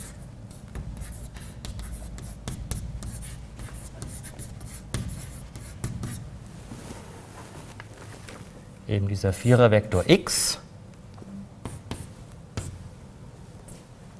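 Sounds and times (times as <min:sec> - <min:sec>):
chalk or pen writing out a physics equation on a board: 0:00.0 - 0:06.2
soft rubbing and shuffling: 0:06.4 - 0:08.7, 0:13.6 - 0:14.1
speech: 0:08.9 - 0:10.6.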